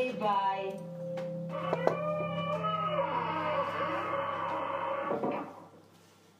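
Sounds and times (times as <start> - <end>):
speech: 0.2 - 0.9
door swinging with a long wavering creak: 1.1 - 5.8.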